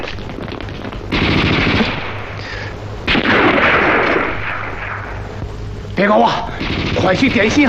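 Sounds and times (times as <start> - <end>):
automatic gunfire: 1.1 - 2.3, 3.1 - 5.2, 6.5 - 7.6
speech: 6.0 - 7.6.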